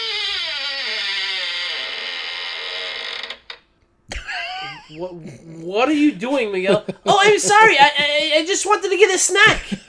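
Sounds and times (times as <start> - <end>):
door hinge creaking: 0.0 - 3.8
speech: 4.9 - 9.8.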